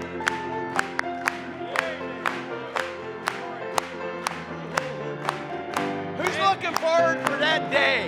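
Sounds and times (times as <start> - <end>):
audience clapping in rhythm: 0.0 - 8.0
sustained organ-like music or singing: 0.0 - 8.0
speech: 6.7 - 8.0.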